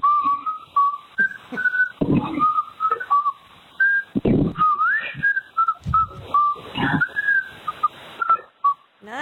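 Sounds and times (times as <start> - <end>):
person whistling a simple birthday melody: 0.0 - 8.9.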